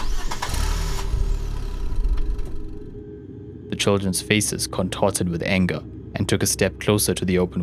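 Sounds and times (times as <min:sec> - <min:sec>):
car engine cranking, starting and idling: 0:00.0 - 0:03.0
speech: 0:03.8 - 0:07.6.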